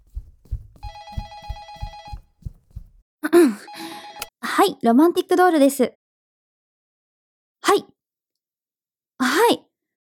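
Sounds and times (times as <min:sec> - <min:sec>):
low rhythmic thumps: 0:00.0 - 0:03.0
telephone ringing with an electronic trill: 0:00.8 - 0:02.3, 0:03.7 - 0:04.3
speech: 0:04.6 - 0:06.0.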